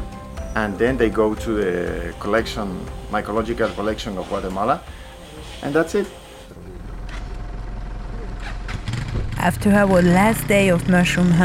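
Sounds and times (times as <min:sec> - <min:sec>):
speech: 0:00.6 - 0:06.2, 0:09.4 - 0:11.4
car engine idling: 0:06.6 - 0:11.4.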